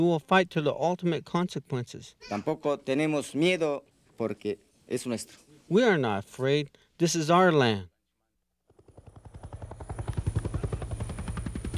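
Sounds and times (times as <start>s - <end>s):
speech: 0.0s - 7.9s
helicopter rotor thumping: 8.7s - 11.7s.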